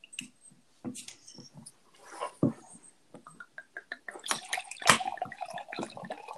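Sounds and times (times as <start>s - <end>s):
drink pouring into a glass for a toast: 4.2s - 6.3s.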